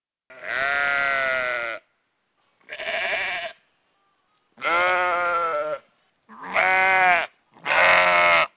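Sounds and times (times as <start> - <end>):
ram bleating: 0.3 - 1.9, 2.7 - 3.6, 4.6 - 8.5.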